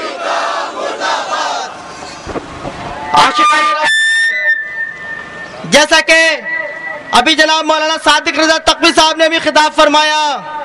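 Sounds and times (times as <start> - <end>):
large crowd chanting protest slogans in unison: 0.0 - 1.8
speech: 3.2 - 3.9, 5.7 - 6.5, 7.1 - 10.6.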